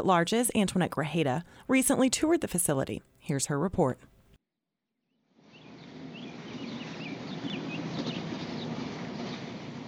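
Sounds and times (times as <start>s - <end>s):
speech: 0.0s - 4.1s
birds chirping at a construction site of a new aquatic center: 5.5s - 9.7s.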